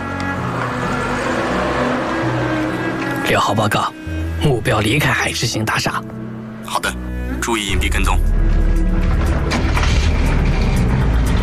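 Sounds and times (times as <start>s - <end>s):
car engine humming while driving: 0.0s - 4.6s, 8.2s - 11.4s
road noise: 0.0s - 11.4s
speech: 3.3s - 8.3s.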